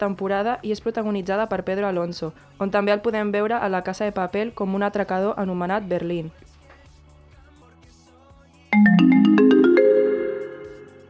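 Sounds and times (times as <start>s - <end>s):
speech: 0.0s - 6.5s
phone ringtone signalling an incoming call: 8.8s - 11.0s.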